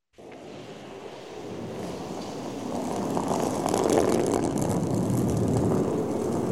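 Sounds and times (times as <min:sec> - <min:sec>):
curling stone sliding on ice: 0:01.8 - 0:06.4.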